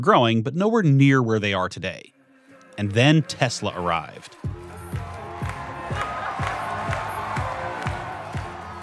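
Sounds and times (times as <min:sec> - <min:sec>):
speech: 0:00.0 - 0:02.2, 0:02.8 - 0:04.6
large crowd cheering and shouting at factory opening event: 0:02.8 - 0:08.8
loud music with steady evenly spaced thumping beats: 0:04.4 - 0:08.8.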